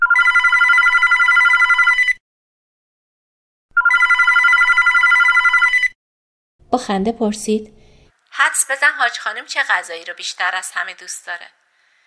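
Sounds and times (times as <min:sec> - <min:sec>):
telephone ringing with a bright trilling tone: 0:00.0 - 0:02.2, 0:03.8 - 0:06.0
speech: 0:06.7 - 0:07.8, 0:08.4 - 0:11.6.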